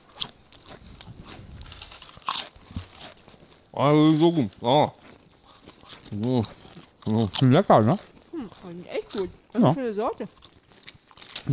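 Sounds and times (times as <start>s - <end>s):
tomato and herb flavoured potato chips crunched and chewed near the microphone: 0.0s - 11.5s
speech: 3.8s - 5.0s, 6.1s - 10.5s.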